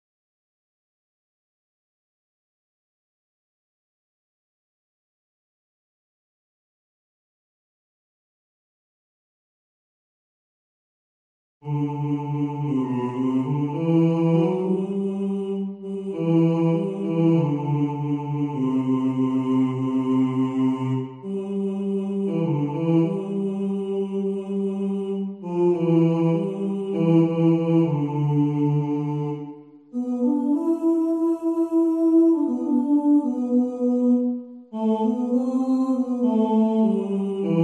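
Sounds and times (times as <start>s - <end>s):
soprano singing: 11.6s - 37.6s.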